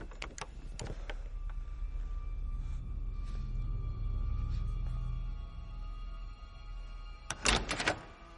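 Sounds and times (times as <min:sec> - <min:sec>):
door knob clicking and rattling: 0:00.0 - 0:00.9, 0:07.3 - 0:08.2
steady low rumbling hum: 0:00.0 - 0:07.3.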